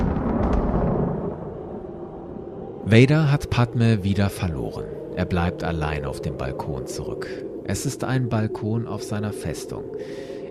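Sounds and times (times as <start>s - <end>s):
lightning strike sound effect: 0.0s - 1.7s
speech: 2.9s - 10.5s.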